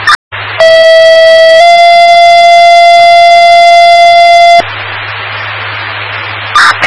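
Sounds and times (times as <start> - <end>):
electronic fire dispatch paging tones for a vehicle fire: 0.0 - 4.6, 6.5 - 6.8
hissing radio static: 4.2 - 6.8.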